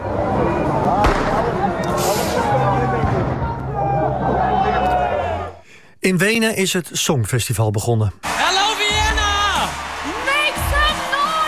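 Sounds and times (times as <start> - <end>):
agitated crowd shouting outdoors: 0.0 - 5.6, 8.2 - 11.4
fireworks thrown during a protest banging: 1.0 - 3.3
speech: 6.0 - 8.3.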